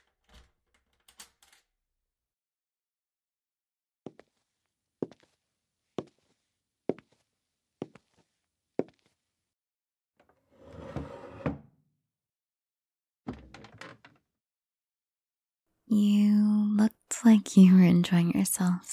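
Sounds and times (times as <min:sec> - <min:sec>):
door knocks or clunks: 0:13.3 - 0:14.2
speech: 0:15.9 - 0:16.2, 0:17.2 - 0:18.9.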